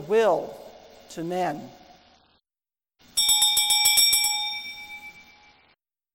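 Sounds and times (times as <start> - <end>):
speech: 0.1 - 1.8
church bells ringing: 3.1 - 5.6.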